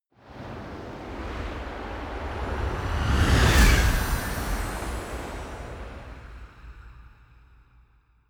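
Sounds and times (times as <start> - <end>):
magic whoosh gust: 0.9 - 6.6.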